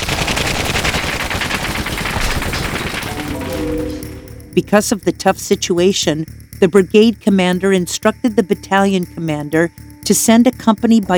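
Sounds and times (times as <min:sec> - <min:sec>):
heavy automatic machine gun fire from an upper cable station: 0:00.0 - 0:04.4
speech: 0:04.6 - 0:11.1.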